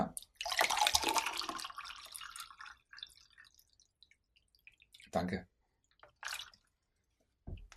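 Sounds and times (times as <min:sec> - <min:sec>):
scattered drips and trickles of water: 0:00.0 - 0:07.7
water being poured into a glass: 0:00.2 - 0:05.2, 0:05.8 - 0:06.9
speech: 0:05.2 - 0:05.5.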